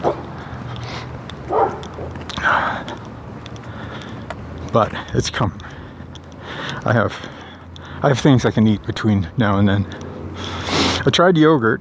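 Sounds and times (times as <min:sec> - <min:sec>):
dog yipping and barking playfully: 0:00.0 - 0:00.2, 0:01.5 - 0:01.9
speech: 0:04.7 - 0:05.8, 0:06.8 - 0:07.4, 0:08.0 - 0:10.0, 0:11.0 - 0:11.7.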